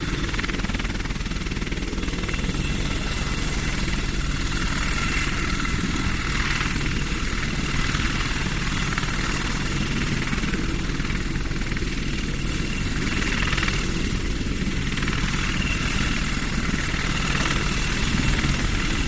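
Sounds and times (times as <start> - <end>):
AH-64 Apache helicopter hovering overhead: 0.0 - 19.0.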